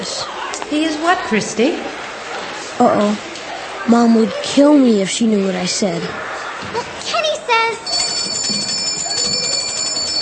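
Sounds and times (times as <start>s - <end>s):
speech: 0.7s - 2.0s, 2.8s - 8.0s
golden bell ringing: 7.8s - 10.2s.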